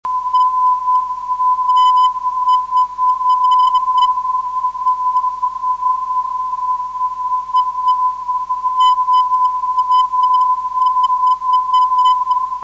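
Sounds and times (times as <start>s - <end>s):
non-directional radio beacon signal: 0.0s - 12.6s.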